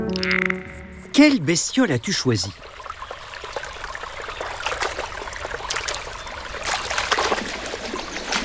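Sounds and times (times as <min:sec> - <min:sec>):
steady rush of flowing river water: 0:00.1 - 0:08.4
speech: 0:01.2 - 0:02.7
panicked fish jumping and splashing in a river: 0:02.5 - 0:08.4.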